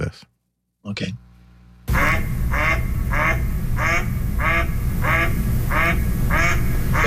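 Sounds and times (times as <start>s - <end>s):
speech: 0.1s - 1.2s
low rumble: 1.2s - 7.0s
mallard duck quacking: 1.9s - 7.0s.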